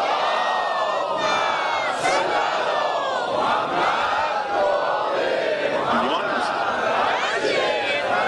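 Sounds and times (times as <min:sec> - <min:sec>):
large crowd chanting a salawat religious blessing in unison: 0:00.0 - 0:08.2.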